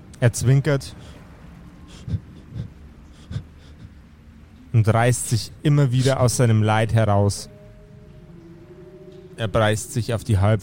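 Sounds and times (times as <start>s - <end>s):
speech: 0.2s - 1.2s, 2.1s - 2.3s, 4.8s - 7.5s, 9.4s - 10.6s
voice imitating panicked breathing of an injured body in a tabletop role-playing game: 1.9s - 4.2s.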